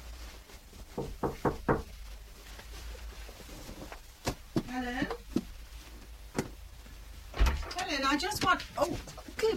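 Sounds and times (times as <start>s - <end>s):
knocking on a bedroom door: 0.9s - 1.9s
people talking: 4.7s - 5.2s, 7.7s - 9.5s.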